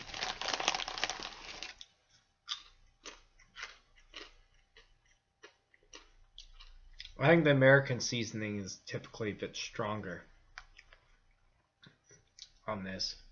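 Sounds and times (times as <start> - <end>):
crunching crisps while eating: 0.0 - 6.7
speech: 7.2 - 10.3, 12.7 - 13.2.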